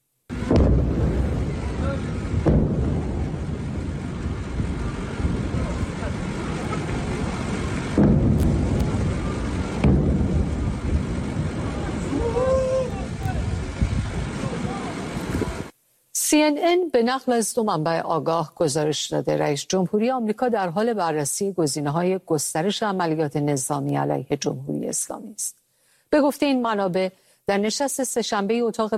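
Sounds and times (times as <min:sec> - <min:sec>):
deep explosions booming: 0:00.3 - 0:15.7
wind noise: 0:00.3 - 0:15.7
speech: 0:16.3 - 0:28.9.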